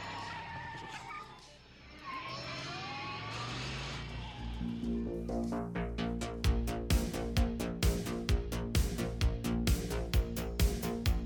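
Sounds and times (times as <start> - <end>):
DeLorean car engine starting and accelerating: 2.4 - 5.6
rhythmic thumps: 4.6 - 11.2.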